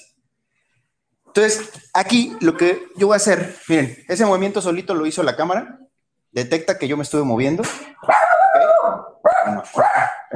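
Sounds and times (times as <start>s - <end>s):
speech: 1.4s - 10.3s
dog barking in high-pitched yelps: 8.0s - 10.3s.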